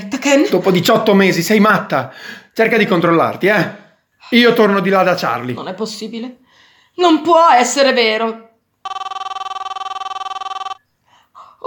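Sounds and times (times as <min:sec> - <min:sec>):
speech: 0:00.2 - 0:06.4, 0:07.0 - 0:09.0
telephone bell ringing: 0:08.8 - 0:10.8.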